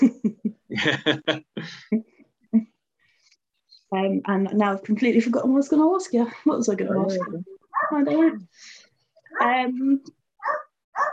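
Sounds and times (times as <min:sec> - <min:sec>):
laughter: 0:00.0 - 0:01.8
speech: 0:00.8 - 0:02.1, 0:03.9 - 0:08.8, 0:09.4 - 0:10.2
dog barking with whiny yowling cries: 0:07.2 - 0:08.1, 0:10.4 - 0:11.1.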